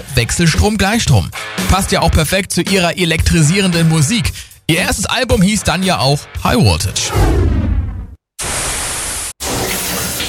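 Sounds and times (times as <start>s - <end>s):
speech: 0.2s - 7.5s
shower water running: 8.4s - 10.2s.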